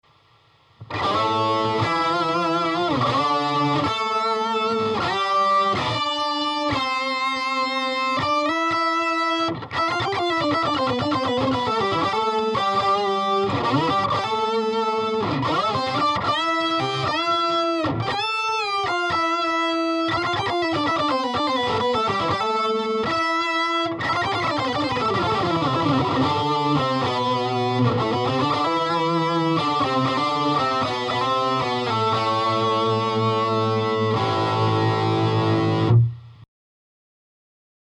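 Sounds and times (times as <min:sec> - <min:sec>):
electric guitar lead through octaver effect: 0:00.8 - 0:36.4.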